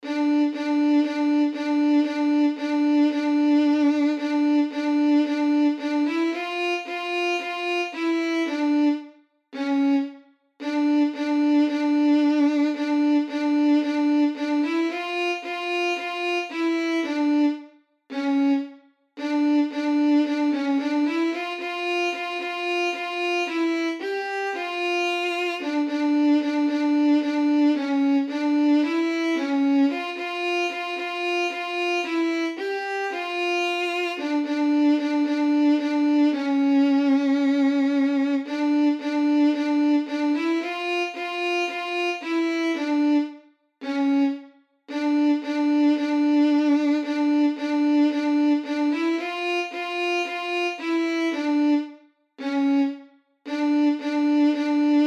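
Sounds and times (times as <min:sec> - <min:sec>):
violin playing a czardas: 0:00.0 - 0:55.0.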